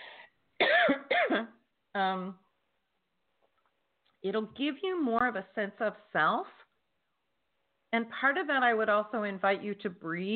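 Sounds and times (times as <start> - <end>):
person coughing forcefully: 0.6 - 1.6
speech: 1.4 - 2.4, 4.2 - 6.6, 7.9 - 10.3.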